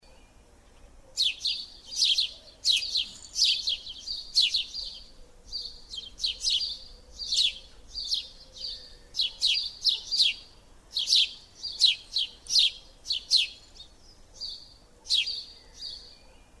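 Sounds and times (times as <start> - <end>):
sparrow singing: 0.0 - 16.5.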